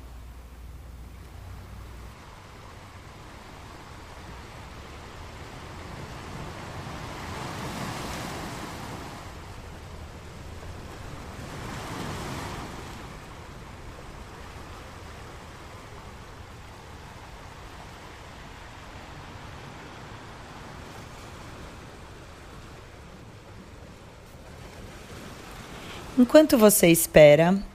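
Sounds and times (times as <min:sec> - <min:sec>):
ocean waves breaking on shore: 0:00.0 - 0:27.7
wind blowing over the water: 0:00.0 - 0:27.7
speech: 0:26.2 - 0:27.7.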